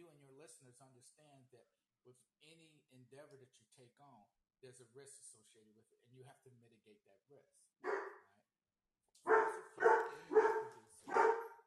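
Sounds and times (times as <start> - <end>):
speech: 0.5 - 8.2
dog barks: 7.8 - 8.3, 9.2 - 11.6.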